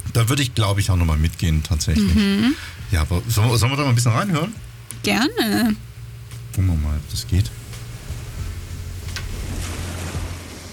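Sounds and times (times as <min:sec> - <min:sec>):
speech: 0:00.2 - 0:05.9, 0:06.5 - 0:07.6
brief splash: 0:09.2 - 0:10.7.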